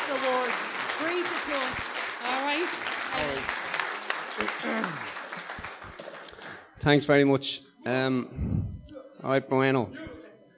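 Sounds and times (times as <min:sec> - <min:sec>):
crowd clapping: 0:00.0 - 0:06.7
speech: 0:06.8 - 0:08.6, 0:09.2 - 0:10.0.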